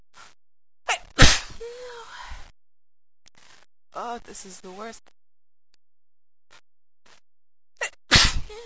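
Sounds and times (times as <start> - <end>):
speech: 4.2 - 5.2
person sneezing: 7.8 - 8.6.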